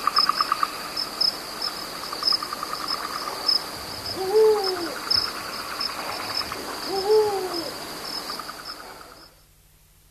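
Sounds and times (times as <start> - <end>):
crickets trilling: 0.0 - 9.5
thin continuous insect whine: 0.0 - 9.5
Eurasian eagle-owl hooting: 4.0 - 9.1.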